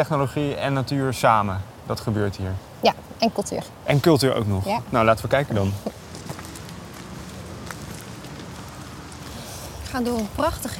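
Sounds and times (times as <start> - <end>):
speech: 0.0 - 6.0, 10.0 - 10.7
steady open-air noise: 0.0 - 10.7
footsteps crunching outdoors at a walking pace: 5.7 - 10.7.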